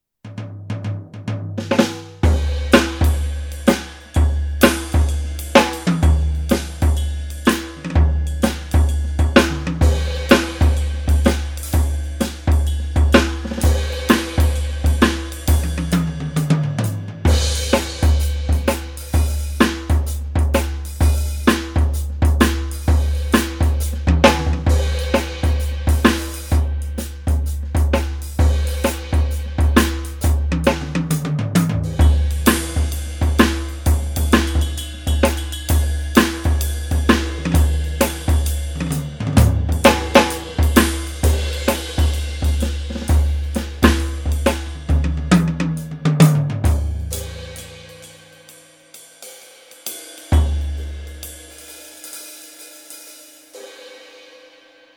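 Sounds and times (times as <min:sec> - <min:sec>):
swing drum kit pop groove: 0:00.7 - 0:53.9.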